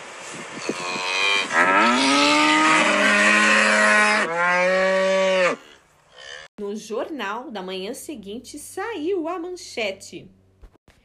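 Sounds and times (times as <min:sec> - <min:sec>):
herd of cows mooing in protest: 0:00.6 - 0:06.5
speech: 0:07.3 - 0:10.4.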